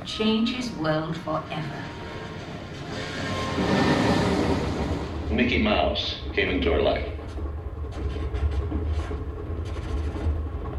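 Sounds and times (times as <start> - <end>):
train rumbling along the rails: 0.0 - 10.7
speech: 0.1 - 2.1, 5.3 - 7.2.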